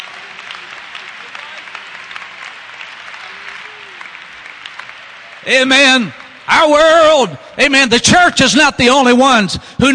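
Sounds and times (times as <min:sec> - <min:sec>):
audience clapping in praise: 0:00.0 - 0:07.1
speech: 0:05.4 - 0:09.9.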